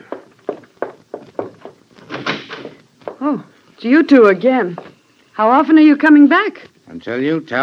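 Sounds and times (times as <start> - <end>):
door thuds: 0.8 - 3.2
door scraping and creaking as it swings open: 1.4 - 2.8
speech: 3.2 - 7.6.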